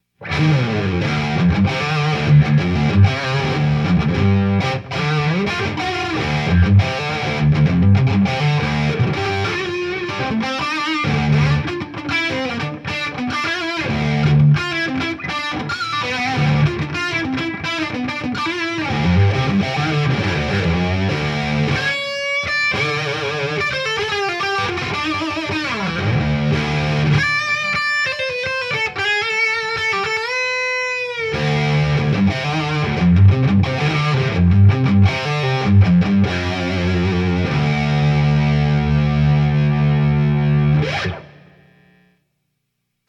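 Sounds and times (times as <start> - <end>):
medium gain distorted guitar: 0.0 - 42.7.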